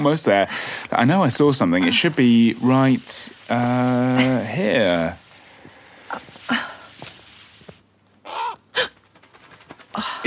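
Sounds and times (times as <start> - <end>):
speech: 0.0 - 5.2
harsh bird squawks: 8.2 - 8.6
loud rasping bird cries: 8.2 - 8.7.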